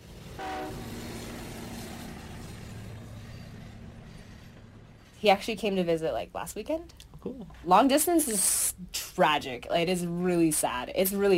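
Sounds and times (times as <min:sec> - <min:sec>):
train rumbling: 0:00.0 - 0:06.8
train horn blast: 0:00.4 - 0:01.3
speech: 0:05.2 - 0:11.3.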